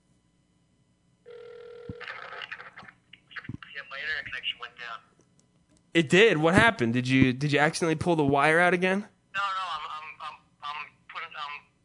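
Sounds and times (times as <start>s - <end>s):
telephone ringing tone during an outgoing call: 1.2s - 2.4s
speech: 4.0s - 5.1s, 6.0s - 9.1s.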